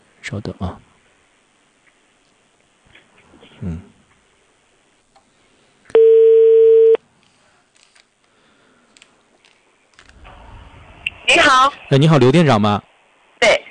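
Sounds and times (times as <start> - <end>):
speech: 0.2 - 0.9, 11.6 - 13.6
telephone ringback tone while placing a call to a hotel: 5.9 - 7.0.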